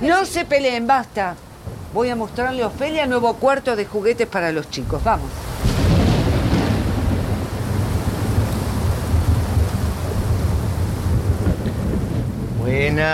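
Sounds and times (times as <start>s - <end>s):
speech: 0.0s - 5.5s, 12.7s - 13.1s
heavy rain: 0.0s - 13.1s.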